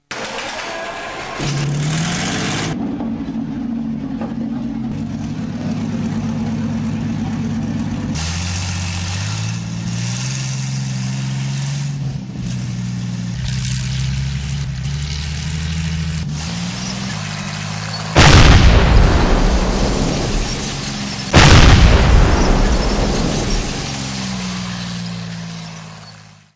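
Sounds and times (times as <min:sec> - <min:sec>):
King Tiger tank: 0:00.0 - 0:26.5.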